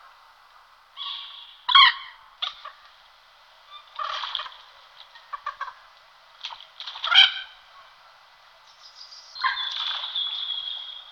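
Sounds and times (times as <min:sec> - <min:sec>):
Common moorhen (Gallinula chloropus) calling: 0:01.0 - 0:02.9, 0:03.6 - 0:05.9, 0:07.0 - 0:11.1.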